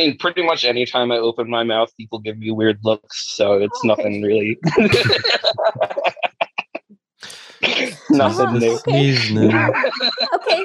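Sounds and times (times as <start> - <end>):
speech: 0.0 - 5.9, 7.6 - 10.6
laughter: 0.0 - 10.6
person sneezing: 7.2 - 9.7.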